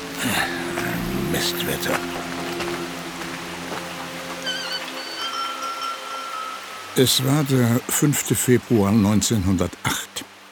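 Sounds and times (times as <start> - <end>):
heavy rain: 0.0 - 10.5
speech: 0.2 - 0.6, 1.3 - 2.3, 7.0 - 10.3.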